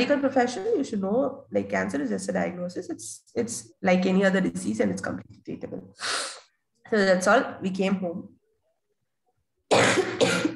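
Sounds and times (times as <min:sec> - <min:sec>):
speech: 0:00.0 - 0:08.4
harsh coughs: 0:09.7 - 0:10.5.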